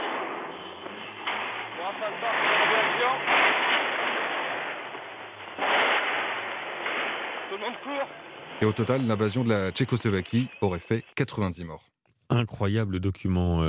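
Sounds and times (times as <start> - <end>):
gunshots during street protest: 0.0 - 10.3
speech: 2.0 - 3.7, 7.6 - 13.6.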